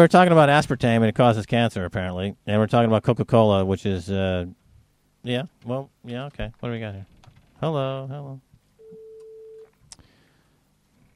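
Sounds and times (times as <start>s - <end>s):
speech: 0.0s - 4.6s, 5.2s - 8.5s
electronic telephone ringing tone on a call line: 8.8s - 9.7s.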